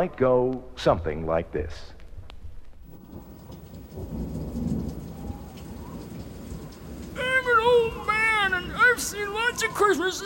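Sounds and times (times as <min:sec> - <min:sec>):
speech: 0:00.0 - 0:02.0, 0:09.0 - 0:10.2
heavy rain: 0:02.9 - 0:10.2
thunder rumbling: 0:02.9 - 0:10.2.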